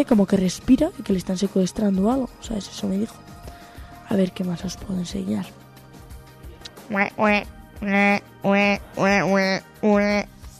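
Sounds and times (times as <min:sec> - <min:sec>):
speech: 0:00.0 - 0:03.3, 0:04.1 - 0:05.6, 0:06.9 - 0:10.4
person imitating duck quacks: 0:06.7 - 0:10.3.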